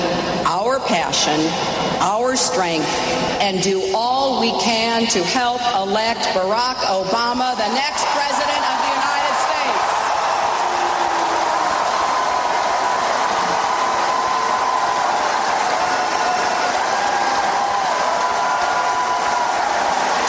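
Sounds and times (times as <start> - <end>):
speech: 0.5 - 8.7
large audience at a political speech booing: 8.4 - 20.2.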